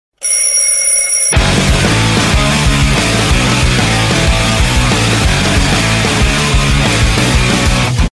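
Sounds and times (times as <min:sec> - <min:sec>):
rock music phone ringtone: 0:00.2 - 0:07.5.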